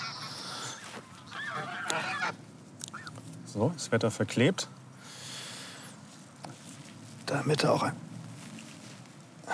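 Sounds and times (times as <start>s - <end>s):
family of geese honking among honeysuckle hedges and stinging nettles: 0.0s - 3.2s
steady outdoor hiss: 0.0s - 9.5s
speech: 3.6s - 4.8s, 7.3s - 8.0s.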